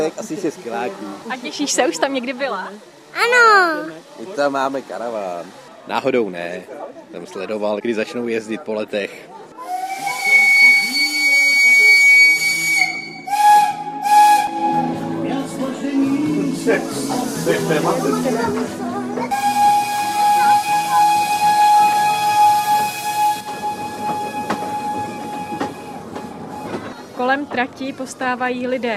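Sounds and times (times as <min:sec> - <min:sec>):
speech: 0:00.0 - 0:09.3, 0:27.5 - 0:28.9
narrow-gauge steam train whistle: 0:09.6 - 0:15.2, 0:19.3 - 0:26.8
narrow-gauge steam train rumbling: 0:13.1 - 0:28.9.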